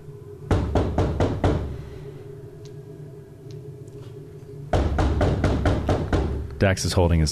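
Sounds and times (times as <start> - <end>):
low hum: 0.0 - 7.3
knocking on a door: 0.5 - 1.7, 4.7 - 6.4
speech: 6.6 - 7.3.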